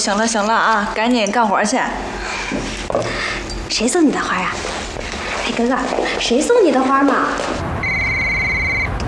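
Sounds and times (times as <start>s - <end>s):
speech: 0.0s - 4.8s, 5.4s - 7.6s
electronic telephone ring: 7.8s - 8.9s.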